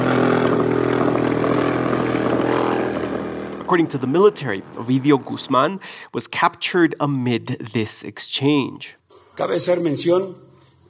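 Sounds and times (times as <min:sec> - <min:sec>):
helicopter engine and rotors droning: 0:00.0 - 0:05.6
speech: 0:03.7 - 0:10.5.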